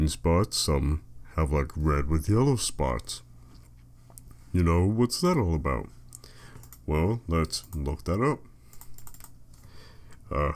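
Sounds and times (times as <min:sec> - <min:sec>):
speech: 0:00.0 - 0:03.3, 0:04.5 - 0:06.0, 0:06.9 - 0:08.5, 0:10.3 - 0:10.5
typing on a computer keyboard: 0:06.5 - 0:06.9, 0:07.6 - 0:09.7.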